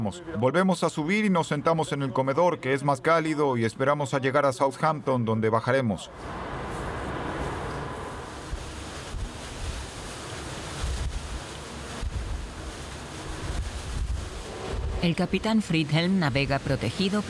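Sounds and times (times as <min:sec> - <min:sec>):
speech: 0:00.0 - 0:06.6, 0:15.0 - 0:17.2
heavy wind roaring across the microphone: 0:06.2 - 0:17.2
rough sea waves about 4 metres high crashing: 0:06.2 - 0:17.2.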